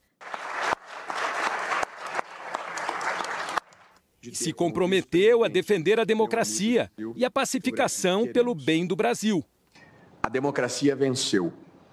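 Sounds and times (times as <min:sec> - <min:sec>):
audience applause: 0:00.0 - 0:04.0
speech: 0:04.2 - 0:09.6, 0:10.3 - 0:11.6.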